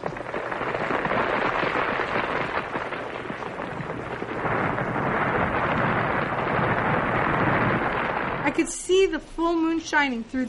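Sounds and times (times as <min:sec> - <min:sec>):
stone house cracking apart in a storm: 0:00.0 - 0:08.8
speech: 0:08.6 - 0:10.4.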